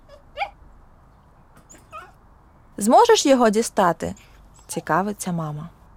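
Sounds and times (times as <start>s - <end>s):
small dachshund whimpering with front paws tangled in its leash: 0.0s - 0.6s, 1.7s - 2.2s
speech: 2.8s - 5.8s.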